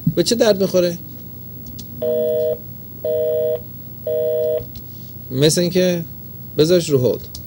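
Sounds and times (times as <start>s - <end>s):
low hum: 0.0s - 7.4s
speech: 0.1s - 1.1s, 2.0s - 7.4s
telephone busy or disconnected-call tones: 2.0s - 4.7s.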